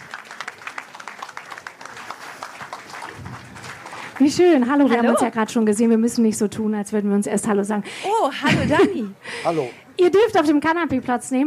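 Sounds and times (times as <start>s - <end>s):
audience applauding at a tent festival: 0.0s - 5.0s
speech: 4.2s - 11.4s.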